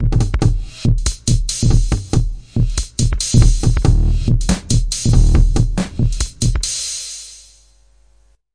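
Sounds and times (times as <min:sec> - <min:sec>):
140 bpm heavily compressed tom and hi-hat drum loop: 0:00.0 - 0:07.7.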